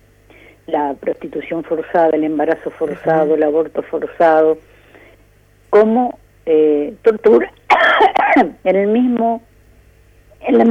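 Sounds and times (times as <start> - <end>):
speech: 0.7 - 4.7, 5.7 - 7.6, 8.4 - 9.5, 10.4 - 10.7
person coughing: 7.7 - 8.5.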